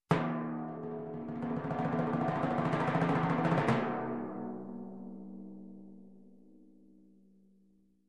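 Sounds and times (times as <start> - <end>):
timpani: 0.1 - 4.9.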